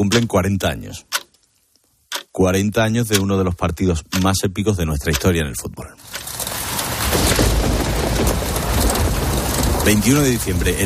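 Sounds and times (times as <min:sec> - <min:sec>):
speech: 0:00.1 - 0:01.2, 0:02.4 - 0:06.3, 0:09.8 - 0:10.8
heavy rain in Seville Spain: 0:06.0 - 0:10.8
deep rolling rumble of thunder in Seville Spain: 0:06.4 - 0:10.8.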